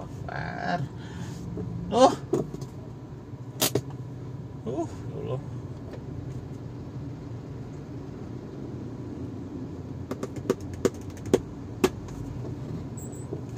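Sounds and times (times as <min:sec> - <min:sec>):
car moving slowly through heavy traffic: 0:00.0 - 0:13.5
speech: 0:01.9 - 0:02.2
clicks and taps inside the car cabin: 0:10.1 - 0:12.2.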